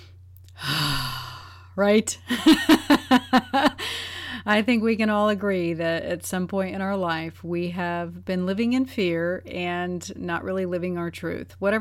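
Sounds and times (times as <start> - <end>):
deep sigh-like breath: 0.0 - 1.8, 3.8 - 4.4
speech: 1.8 - 3.7, 4.4 - 11.7.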